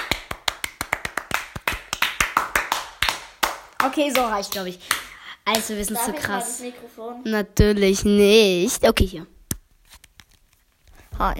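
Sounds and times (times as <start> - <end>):
hands clapping in applause: 0.0 - 6.2
speech: 3.8 - 9.4, 11.2 - 11.3.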